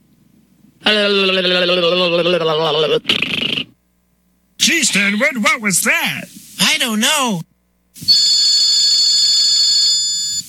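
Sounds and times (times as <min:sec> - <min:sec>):
speech: 0:00.9 - 0:03.2, 0:04.9 - 0:08.2
telephone ringing: 0:08.1 - 0:10.4.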